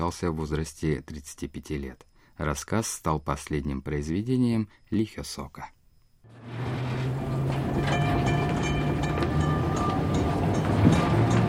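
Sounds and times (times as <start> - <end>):
speech: 0.0 - 5.8
electric commuter train running: 6.3 - 11.4.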